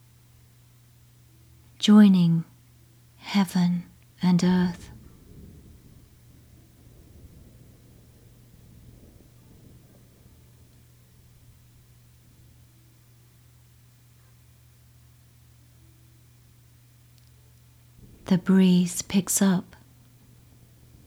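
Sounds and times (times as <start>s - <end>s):
steady faint hiss: 0.0s - 21.0s
speech: 1.8s - 2.5s, 3.2s - 4.9s, 18.3s - 19.8s
distant thunder rumbling: 4.6s - 13.5s, 17.8s - 18.6s, 19.8s - 21.0s.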